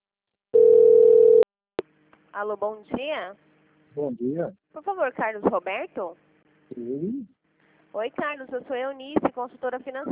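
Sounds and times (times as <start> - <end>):
telephone line tone while placing a call: 0.6 - 1.5
speech: 2.4 - 7.3, 7.9 - 10.1.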